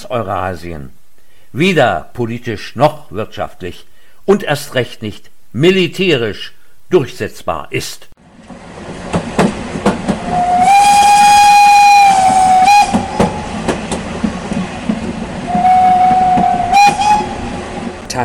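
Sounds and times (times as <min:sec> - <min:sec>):
speech: 0:00.0 - 0:08.1
passing railway train rumbling: 0:08.2 - 0:18.2
clanking railway train wheels: 0:08.4 - 0:18.1
railway train whistle blasts: 0:10.2 - 0:13.6, 0:15.5 - 0:17.6.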